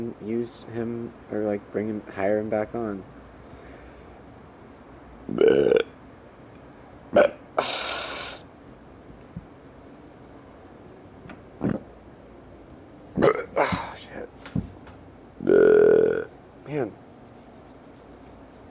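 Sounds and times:
speech: 0.0s - 3.2s, 5.3s - 5.8s
loud burps: 5.3s - 5.9s, 7.1s - 8.4s, 11.6s - 11.9s, 13.2s - 14.0s, 15.4s - 16.3s.

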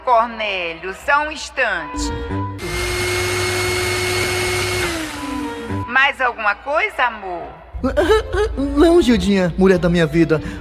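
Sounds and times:
speech: 0.1s - 2.4s, 6.0s - 10.5s
electric blender running at home: 2.6s - 5.9s
laughter: 7.8s - 8.7s.

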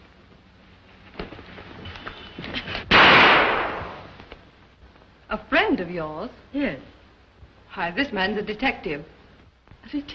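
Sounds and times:
pistol gunshot: 2.9s - 4.1s
speech: 5.7s - 7.0s, 7.7s - 9.2s, 9.8s - 10.1s.

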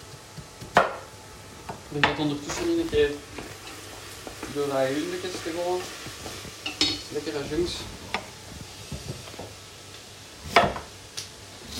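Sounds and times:
knife chopping sweet potato into cubes on a cutting board: 0.0s - 1.1s
speech: 1.9s - 3.5s, 4.5s - 6.4s, 7.1s - 8.0s.

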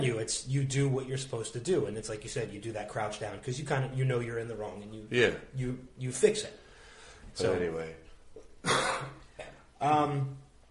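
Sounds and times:
speech: 0.0s - 6.6s, 7.4s - 8.0s, 8.6s - 9.2s, 9.8s - 10.4s
man coughing: 8.6s - 9.7s.

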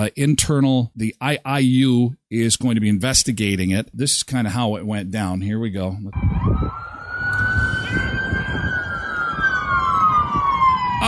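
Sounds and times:
speech: 0.0s - 6.6s
police car siren wailing during a police chase: 6.2s - 11.0s
rumble of traffic and engines: 6.2s - 11.0s.

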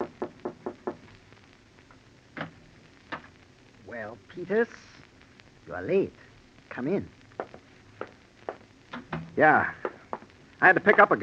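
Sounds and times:
knocking on a wooden door upstairs: 0.0s - 1.0s
speech: 4.0s - 4.9s, 5.7s - 7.2s, 9.4s - 9.8s, 10.6s - 11.2s.

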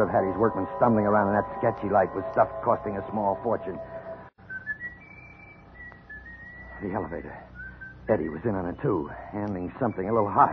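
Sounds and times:
speech: 0.0s - 4.0s, 6.8s - 7.5s, 8.1s - 10.5s
low hum: 0.0s - 10.5s
person whistling a long steady high note: 4.5s - 8.0s.

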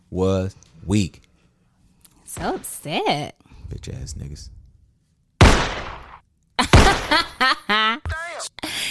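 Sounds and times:
speech: 0.1s - 1.2s, 2.4s - 4.6s
single loud gunshot bang: 5.4s - 7.1s.

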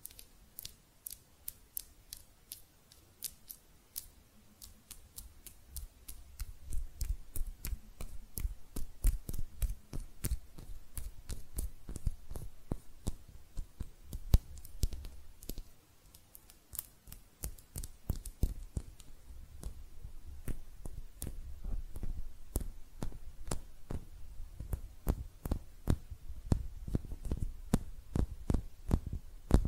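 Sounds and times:
quick crisp hand clicks and taps: 0.0s - 19.8s, 20.4s - 29.6s
soft low rubbing and thumping: 18.7s - 29.6s.

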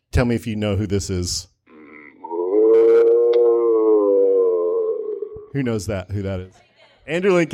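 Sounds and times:
speech: 0.2s - 1.5s, 5.5s - 7.5s
male actor imitating a zombie moan with his throat: 1.7s - 5.6s.

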